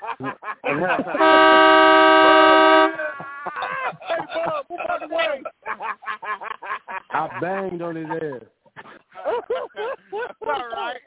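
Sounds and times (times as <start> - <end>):
laughter: 0.0 - 11.0
speech: 0.2 - 1.5, 7.5 - 8.6
truck horn blast: 1.2 - 3.1.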